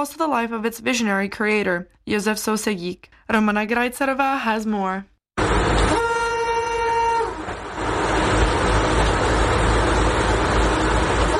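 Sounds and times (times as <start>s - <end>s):
speech: 0.0s - 5.1s
streamlined red Tatra train rumbling along the rails: 5.4s - 11.3s.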